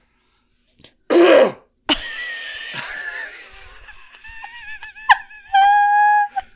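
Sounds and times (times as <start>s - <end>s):
throat clearing: 1.1s - 1.6s
person coughing: 1.1s - 2.1s
laughter: 1.9s - 6.5s.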